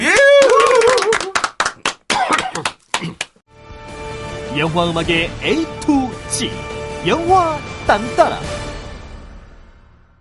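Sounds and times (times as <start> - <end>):
applause for a guest on a talk show: 0.0 - 3.4
speech: 4.6 - 8.6.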